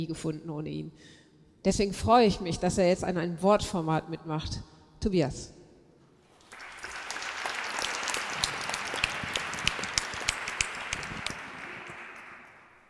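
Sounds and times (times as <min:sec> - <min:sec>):
speech: 0:00.0 - 0:05.6
audience applauding a speaker before a sermon: 0:06.3 - 0:12.8.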